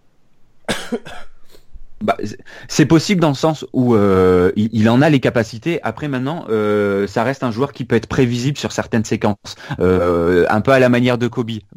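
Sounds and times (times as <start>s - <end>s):
person coughing: 0.7s - 1.6s
speech: 0.9s - 1.3s, 2.0s - 11.7s.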